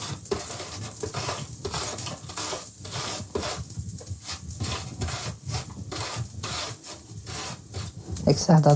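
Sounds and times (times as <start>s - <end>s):
apple being grated: 0.0s - 8.7s
low continuous kitchen noise: 0.0s - 8.7s
speech: 8.3s - 8.7s.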